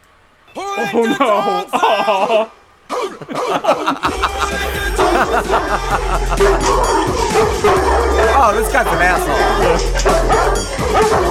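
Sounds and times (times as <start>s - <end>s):
speech: 0.5s - 11.2s
people talking and chuckling: 0.6s - 11.2s
steady low hum: 0.9s - 10.8s
several dogs barking and yipping excitedly: 2.9s - 11.2s.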